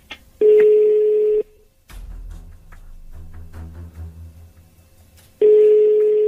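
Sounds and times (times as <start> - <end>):
ringback tone of an unanswered phone call: 0.4 - 1.4, 5.4 - 6.2.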